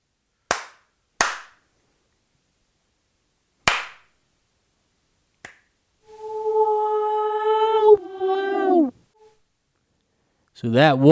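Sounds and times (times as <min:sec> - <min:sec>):
sharp loud hand slaps: 0:00.5 - 0:01.6, 0:03.6 - 0:04.2, 0:05.4 - 0:05.7
wavering tonal wail bending downward: 0:06.1 - 0:09.3
speech: 0:10.6 - 0:11.1.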